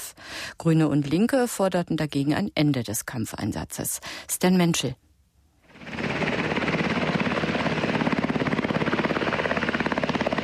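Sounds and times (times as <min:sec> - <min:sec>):
speech: 0:00.6 - 0:05.0
military helicopters taking off and landing at a base in Kunduz Afghanistan: 0:05.7 - 0:10.4.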